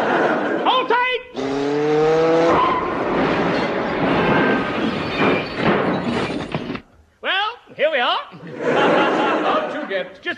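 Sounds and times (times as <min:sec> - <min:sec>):
laughter: 0:00.0 - 0:00.7, 0:08.3 - 0:10.2
car engine revving: 0:01.4 - 0:03.9
car tyres screeching: 0:01.4 - 0:06.8.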